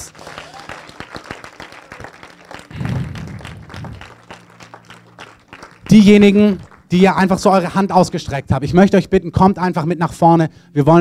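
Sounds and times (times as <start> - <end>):
crowd clapping: 0.0 - 7.5
speech: 5.9 - 10.9.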